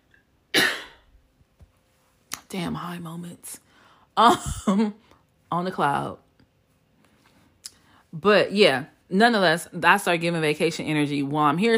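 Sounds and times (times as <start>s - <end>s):
single sharp cough: 0.5s - 1.1s, 4.3s - 5.0s
speech: 2.5s - 6.2s, 8.1s - 11.7s.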